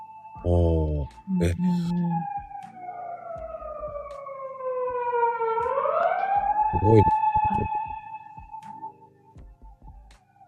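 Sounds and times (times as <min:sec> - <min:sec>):
speech: 0:01.3 - 0:02.4, 0:06.7 - 0:07.8
fire engine siren wailing outside: 0:02.7 - 0:08.3.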